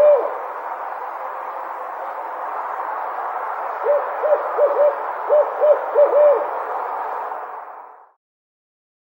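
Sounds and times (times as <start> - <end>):
barred owl hooting: 0.0 - 0.5, 3.8 - 6.6
steady broadband hiss: 0.0 - 8.2.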